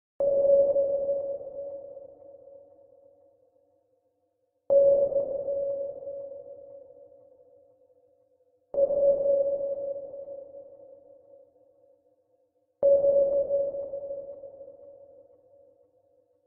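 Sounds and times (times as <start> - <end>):
low sonar ping echo: 0.2 - 16.4.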